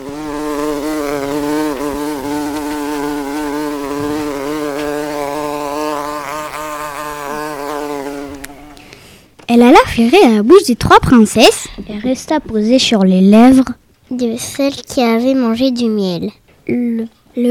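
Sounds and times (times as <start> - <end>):
bee buzzing while hovering: 0.0 - 9.1
speech: 9.6 - 17.4.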